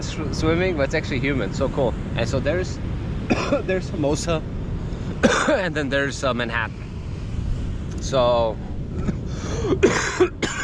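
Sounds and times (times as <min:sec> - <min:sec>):
speech: 0:00.0 - 0:04.6, 0:05.2 - 0:06.8, 0:08.0 - 0:10.5
person coughing: 0:03.3 - 0:03.7, 0:05.2 - 0:05.6, 0:09.0 - 0:10.6.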